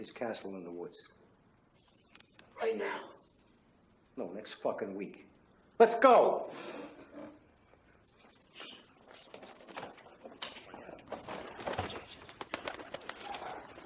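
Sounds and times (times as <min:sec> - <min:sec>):
speech: 0:00.0 - 0:01.2, 0:02.6 - 0:03.2, 0:04.2 - 0:07.3
pigeon wings flapping around a room: 0:11.1 - 0:13.8.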